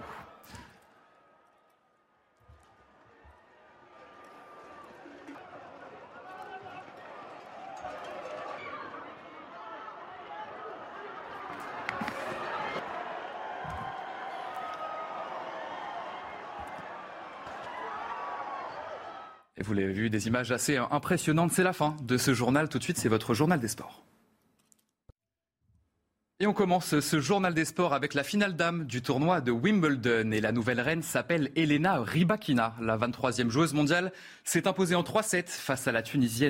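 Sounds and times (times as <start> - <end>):
large crowd running from bulls in a street in Pamplona: 2.4 - 19.0
people shouting while running from bulls: 2.6 - 19.4
speech: 19.6 - 24.1, 26.4 - 36.4.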